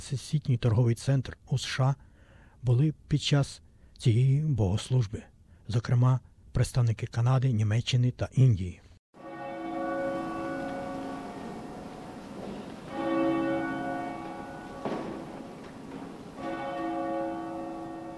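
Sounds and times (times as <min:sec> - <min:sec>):
speech: 0:00.0 - 0:08.8
faint noise: 0:00.0 - 0:18.1
church bells ringing: 0:09.2 - 0:18.1.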